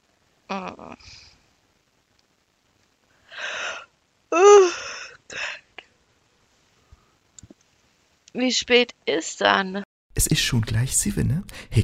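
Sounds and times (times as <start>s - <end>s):
speech: 0.5s - 1.2s, 8.4s - 11.8s
hearty drawn-out yawn with groaning exhale: 3.3s - 5.4s.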